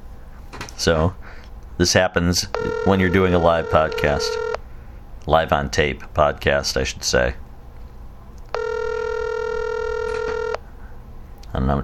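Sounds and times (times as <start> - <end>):
faint hiss: 0.0 - 11.8
speech: 0.8 - 4.4, 5.2 - 7.4, 11.6 - 11.8
steady electronic telephone tone of a failed call: 2.5 - 4.6, 8.5 - 10.6.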